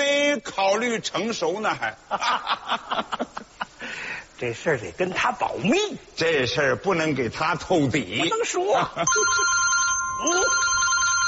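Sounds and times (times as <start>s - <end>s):
speech: 0.4s - 3.2s, 4.4s - 9.6s, 10.2s - 10.6s
telephone ringing with a steady electronic tone: 9.1s - 11.2s.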